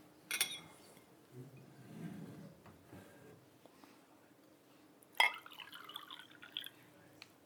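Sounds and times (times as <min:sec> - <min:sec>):
glass clinking: 0:00.3 - 0:00.8, 0:05.2 - 0:06.7
water being poured into a glass: 0:05.2 - 0:06.8.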